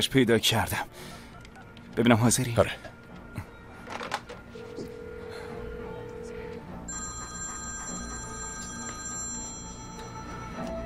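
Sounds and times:
speech: 0.0s - 1.2s, 2.0s - 2.9s
telephone ringing with a steady electronic tone: 4.4s - 10.8s.

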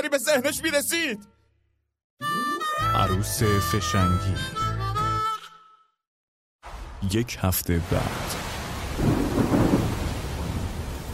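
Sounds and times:
speech: 0.1s - 1.4s, 2.2s - 4.8s, 7.0s - 8.4s
steady heavy downpour: 7.8s - 11.1s
low thunder rumbles: 8.0s - 11.1s.

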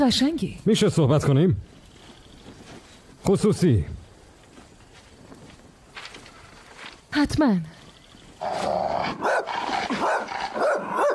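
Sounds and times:
speech: 0.0s - 1.7s, 3.2s - 4.0s, 7.2s - 7.8s
formerly wild dog barking: 9.1s - 11.1s.

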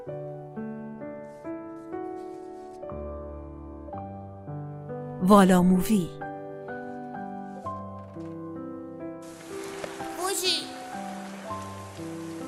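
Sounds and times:
soft music with sustained tones: 0.0s - 12.4s
speech: 5.2s - 6.2s
rain falling: 9.2s - 12.4s.

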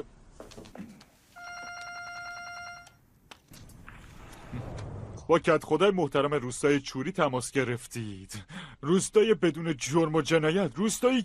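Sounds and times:
phone ringing with electronic trilling tone: 1.3s - 3.1s
speech: 5.3s - 11.2s.

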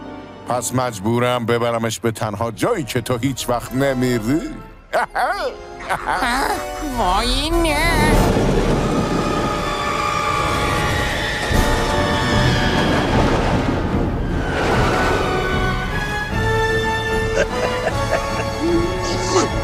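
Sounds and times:
speech: 0.5s - 8.4s
laughter: 4.9s - 7.0s, 17.1s - 19.5s
roller coaster rattling along its track: 7.8s - 16.5s
shrill metallic squeals of a roller coaster: 8.8s - 15.4s.

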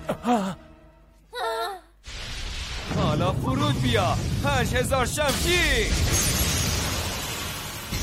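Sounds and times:
speech: 0.3s - 0.7s, 3.9s - 6.3s
explosive burst finish sound effect: 2.1s - 8.0s.

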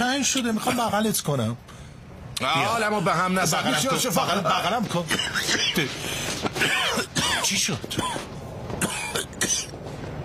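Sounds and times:
speech: 0.2s - 1.8s, 2.4s - 8.9s
laughter: 3.5s - 6.0s
harsh coughs: 5.1s - 5.9s, 6.5s - 9.8s.

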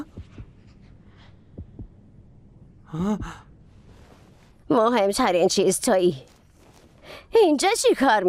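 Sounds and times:
faint heartbeat: 0.0s - 4.5s
speech: 2.9s - 3.5s, 4.7s - 6.3s, 7.3s - 8.2s.

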